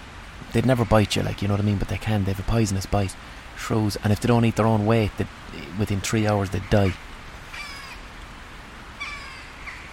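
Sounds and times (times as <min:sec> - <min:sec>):
hiss: 0:00.0 - 0:09.9
speech: 0:00.5 - 0:07.1
hooded crows cawing: 0:07.5 - 0:08.1, 0:09.0 - 0:09.9.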